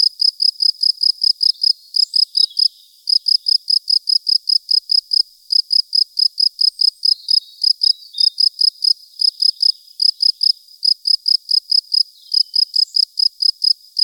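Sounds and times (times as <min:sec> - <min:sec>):
field cricket chirping at Buoux Vaucluse: 0:00.0 - 0:14.0.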